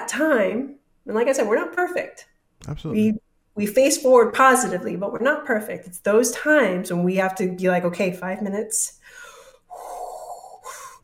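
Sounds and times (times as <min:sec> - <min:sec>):
speech: 0:00.1 - 0:09.2
deliberate Lamaze-style calming breaths: 0:09.0 - 0:11.0.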